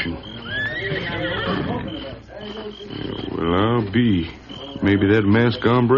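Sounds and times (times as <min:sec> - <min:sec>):
horse whinnying: 0:00.2 - 0:02.1
speech: 0:03.9 - 0:05.9.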